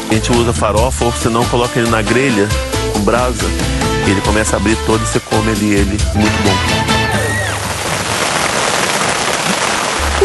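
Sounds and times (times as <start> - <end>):
speech: 0.2 - 7.0
sudden rain shower: 7.0 - 10.2.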